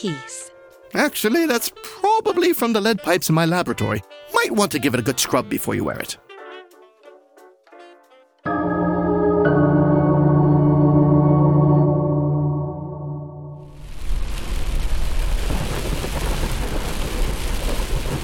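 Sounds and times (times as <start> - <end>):
speech: 0.0 - 0.3, 0.9 - 6.2
sustained tonal chord ringing: 8.5 - 13.9
heavy rain roaring while driving at night: 13.6 - 18.2.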